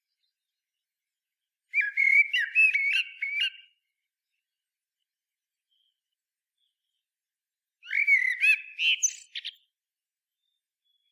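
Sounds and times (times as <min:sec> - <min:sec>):
Common blackbird Turdus merula whistled song: 0:01.7 - 0:03.8, 0:07.8 - 0:09.7.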